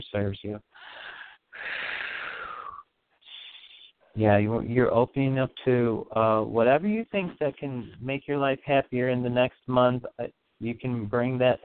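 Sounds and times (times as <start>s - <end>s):
speech: 0.1s - 1.8s, 4.2s - 11.6s
deep breath in through the nose and out through the mouth during a guided breathing exercise: 0.7s - 4.1s.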